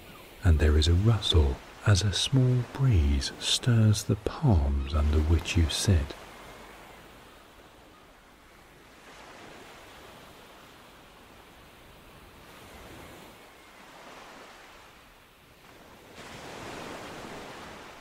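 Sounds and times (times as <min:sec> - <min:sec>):
ocean waves washing against the shore: 0:00.0 - 0:17.9
speech: 0:00.4 - 0:06.2.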